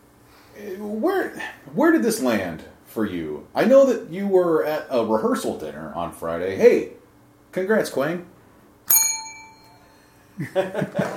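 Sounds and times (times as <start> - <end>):
speech: 0.6 - 8.3, 10.4 - 11.1
soft bell ding: 8.9 - 10.2
laughter: 10.4 - 11.1.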